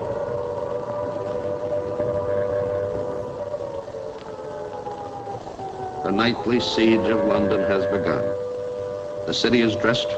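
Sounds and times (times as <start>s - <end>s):
air raid siren wailing over London at night: 0.0s - 10.1s
speech: 6.1s - 8.4s, 9.3s - 10.1s.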